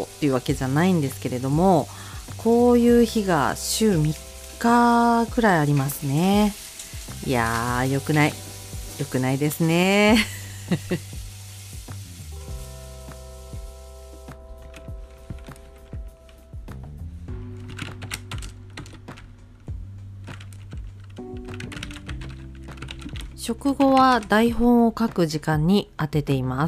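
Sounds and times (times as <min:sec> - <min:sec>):
speech: 0:00.0 - 0:06.6, 0:07.2 - 0:08.4, 0:09.0 - 0:11.2, 0:23.6 - 0:26.6
rapid typing on a computer keyboard: 0:17.6 - 0:19.2, 0:20.3 - 0:23.3.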